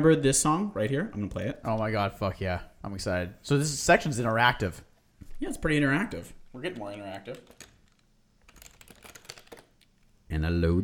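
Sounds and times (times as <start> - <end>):
speech: 0.0 - 7.7, 10.3 - 10.8
typing on a computer keyboard: 6.6 - 10.0.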